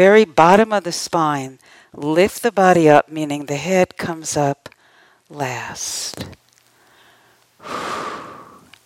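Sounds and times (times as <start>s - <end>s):
speech: 0.0s - 6.4s, 7.6s - 8.1s
deep breath in during movement and breathing practice: 6.8s - 8.8s.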